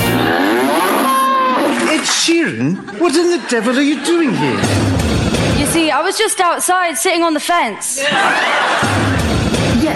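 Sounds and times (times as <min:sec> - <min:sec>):
cow mooing with sliding pitch: 0:00.1 - 0:01.7
laughter: 0:00.1 - 0:05.0, 0:07.9 - 0:09.5
speech: 0:03.0 - 0:09.2.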